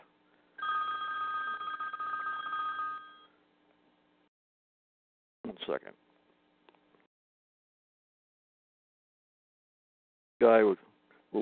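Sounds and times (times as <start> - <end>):
phone ringing with a steady electronic trill: 0.6 - 3.4
speech: 5.5 - 6.1, 10.4 - 11.4.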